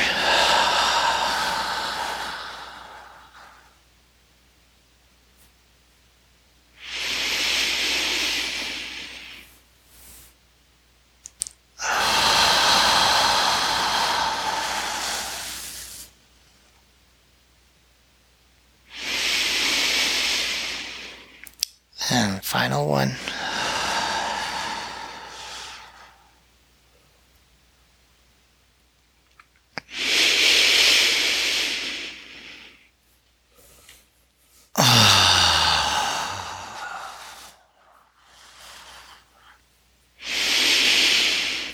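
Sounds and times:
slow deep inhales and exhales in a guided breathing exercise: 0:00.0 - 0:03.9, 0:06.8 - 0:10.4, 0:11.8 - 0:16.2, 0:18.8 - 0:21.4, 0:22.0 - 0:26.5, 0:29.8 - 0:41.7.

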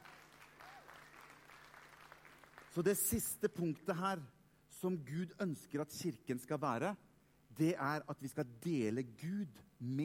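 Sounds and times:
audience applause: 0:00.0 - 0:02.8
faint steady hum: 0:00.0 - 0:10.0
speech: 0:02.8 - 0:10.0.

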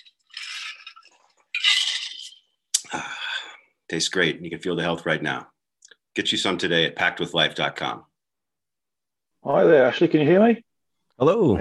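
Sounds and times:
iced herbal tea with cacao, ginger and turmeric being sipped: 0:00.0 - 0:03.0
speech: 0:03.9 - 0:05.6, 0:06.2 - 0:08.1, 0:09.4 - 0:11.5.

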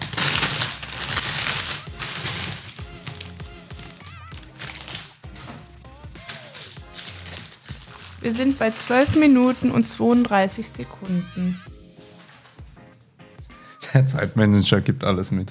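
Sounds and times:
hard little Lego pieces clattering inside a plastic bag: 0:00.0 - 0:10.5
small plastic bag of Lego parts rustling and crinkling: 0:00.0 - 0:12.8
faint music: 0:00.0 - 0:15.5
speech: 0:08.2 - 0:11.7, 0:14.0 - 0:15.5.

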